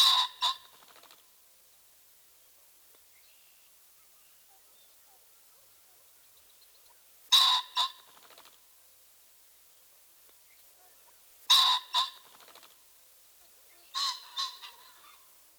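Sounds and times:
ring-necked pheasant harsh two-noted squawk: 0.0s - 0.9s, 6.9s - 8.4s, 10.8s - 12.7s, 13.7s - 15.4s.

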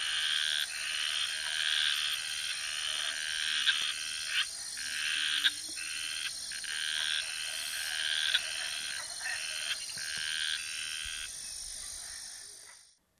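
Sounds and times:
continuous high insect whine in the Ecuadorian Amazon: 0.0s - 12.8s
Garbe's snouted treefrog Scinax garbei buzzy calls in the Ecuadorian Amazon: 0.0s - 12.9s.

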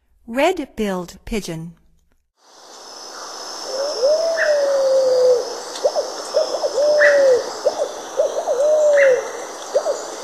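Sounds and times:
Red-billed Pigeon calling: 3.7s - 10.2s.

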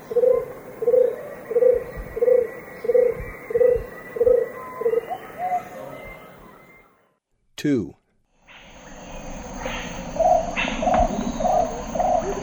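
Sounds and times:
Scarlet-crowned Barbet hooting in the eastern lowlands of South America: 0.0s - 6.9s, 9.5s - 12.4s
speech: 7.6s - 8.0s.

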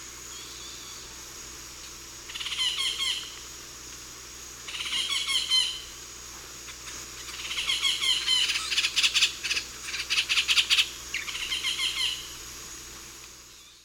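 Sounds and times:
yellow-tufted woodpecker Melanerpes cruentatus group chattering calls in eastern lowlands of South America: 2.3s - 3.4s, 4.6s - 5.9s, 6.7s - 12.4s.

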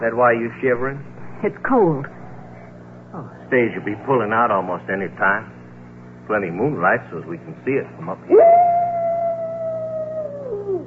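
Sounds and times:
speech: 0.0s - 2.2s, 3.1s - 5.6s, 6.3s - 8.7s
coyote howling on a moonlit night: 8.3s - 10.8s.

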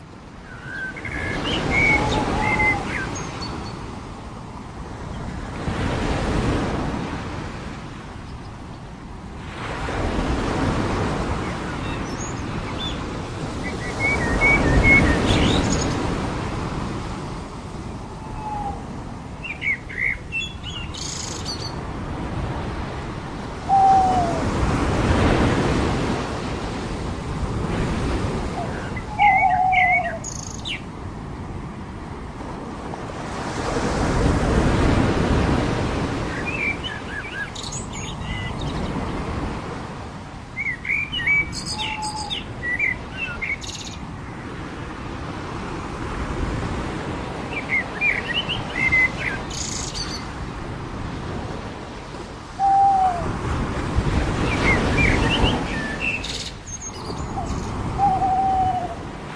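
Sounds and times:
ocean waves on the beach: 0.0s - 59.3s
birds on the beach: 0.4s - 3.9s, 11.3s - 16.2s, 18.2s - 21.9s, 28.4s - 30.9s, 36.2s - 39.3s, 40.6s - 44.6s, 47.5s - 50.3s, 54.3s - 59.0s.

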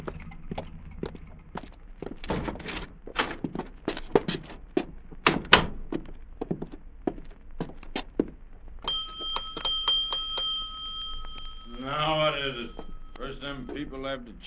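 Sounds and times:
footsteps thudding across a floor: 0.0s - 5.2s, 5.9s - 9.8s
hotel bell ringing: 8.9s - 14.4s
speech: 13.9s - 14.4s.

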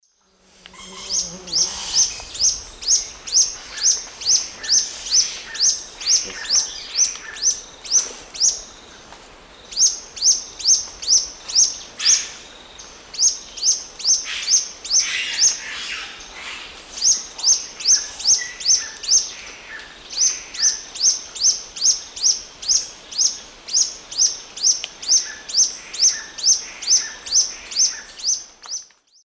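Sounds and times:
Epinecrophylla erythrura song in the Eastern Lowlands of South America: 0.0s - 8.8s, 9.6s - 29.2s.

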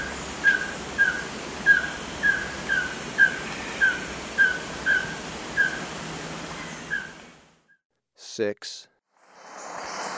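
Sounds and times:
white-streaked antvireo calling with short whistled notes in Ecuador: 0.0s - 7.4s
speech: 8.4s - 8.9s.

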